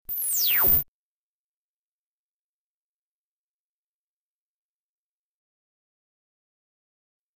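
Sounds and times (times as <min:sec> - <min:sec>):
long blip tone: 0:00.1 - 0:00.8.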